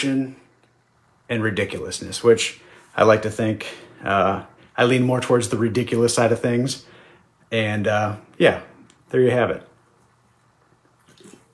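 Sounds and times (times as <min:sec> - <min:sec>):
speech: 0:00.0 - 0:00.4, 0:01.3 - 0:06.9, 0:07.5 - 0:09.7
person sipping a drink: 0:10.7 - 0:11.5.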